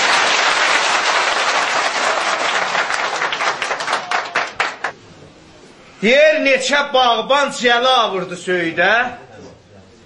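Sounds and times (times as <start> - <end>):
audience applause at a live performance: 0.0 - 4.9
speech: 6.0 - 9.2.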